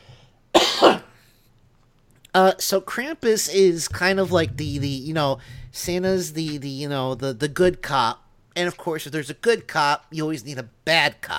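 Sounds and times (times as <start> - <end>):
harsh cough: 0.5 - 1.2
speech: 2.4 - 11.3.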